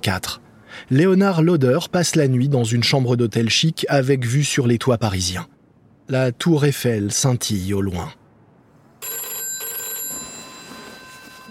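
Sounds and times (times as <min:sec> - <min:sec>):
speech: 0:00.0 - 0:08.2
telephone ringing with electronic trill in a chic hotel room in Paris: 0:09.0 - 0:11.4.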